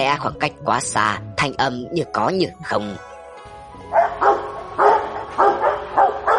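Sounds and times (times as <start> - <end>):
speech: 0.0 - 3.1
several dogs barking in a street at night: 3.9 - 6.3.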